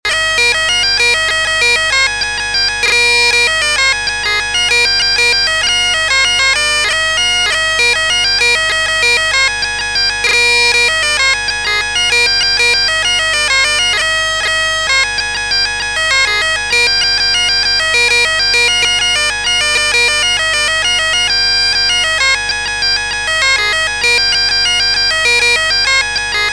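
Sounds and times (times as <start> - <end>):
jig music: 0.1 - 26.5.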